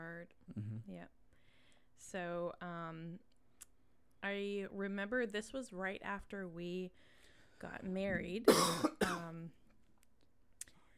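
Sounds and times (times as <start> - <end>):
speech: 0.5 - 1.2, 2.0 - 3.3, 4.2 - 9.6
harsh cough of a person not feeling well: 8.5 - 9.3.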